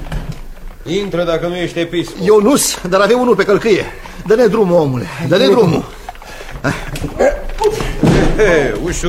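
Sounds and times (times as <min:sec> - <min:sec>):
speech: 0:00.8 - 0:06.0, 0:06.6 - 0:07.8, 0:08.4 - 0:09.0
people talking hurriedly: 0:00.8 - 0:09.0
door slamming shut with a heavy thud: 0:07.3 - 0:08.8.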